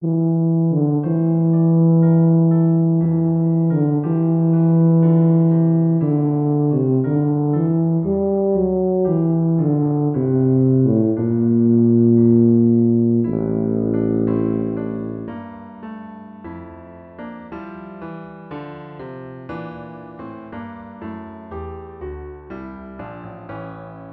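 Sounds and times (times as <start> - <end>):
tuba playing an elegy: 0.0 - 15.8.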